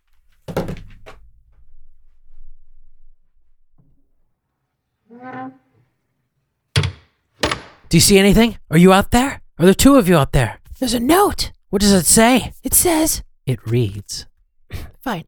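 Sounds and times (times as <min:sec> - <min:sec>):
door thudding open with a low rumble: 0:00.5 - 0:01.2, 0:06.8 - 0:07.9
door creaking: 0:05.1 - 0:06.0, 0:06.8 - 0:07.9
speech: 0:07.9 - 0:15.2.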